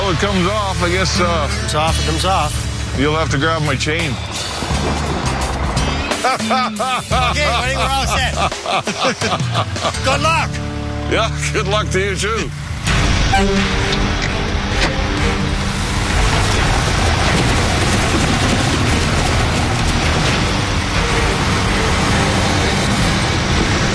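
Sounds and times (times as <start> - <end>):
three loader tires dragged along a roughed-in dirt road: 0.0 - 6.5, 12.0 - 23.9
vehicle engine rumbling while dragging loader tires: 0.0 - 8.7, 9.4 - 23.9
speech: 0.1 - 5.1, 6.2 - 12.6, 13.3 - 14.0
laughter: 6.0 - 10.4.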